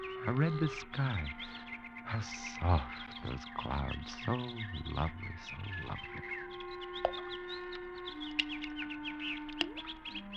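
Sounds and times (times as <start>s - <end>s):
small birds chirping at a fish pond: 0.0s - 10.3s
speech: 0.2s - 6.4s, 7.0s - 7.4s
sharp clicks or splashes: 7.0s - 7.3s, 8.3s - 8.8s, 9.4s - 10.1s.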